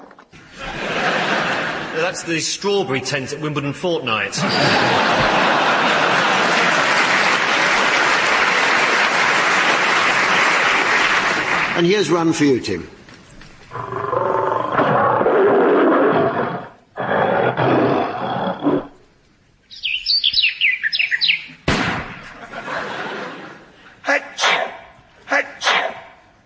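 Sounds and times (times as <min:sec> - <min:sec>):
laughter: 0:00.4 - 0:02.4, 0:04.3 - 0:10.8, 0:22.2 - 0:24.2
speech: 0:02.1 - 0:05.6, 0:11.8 - 0:13.0
big cat like a lion roaring: 0:13.7 - 0:19.0
high bird chirps: 0:19.7 - 0:21.6
person sneezing: 0:24.1 - 0:26.2.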